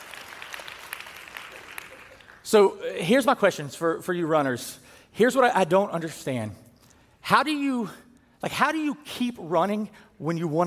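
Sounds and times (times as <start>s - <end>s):
crowd clapping: 0.0s - 2.5s
speech: 2.5s - 6.6s, 7.3s - 10.6s.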